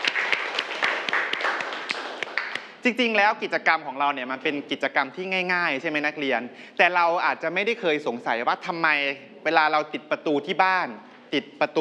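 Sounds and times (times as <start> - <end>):
students clapping for a classmate in a classroom: 0.0 - 2.8
speech: 2.8 - 11.7.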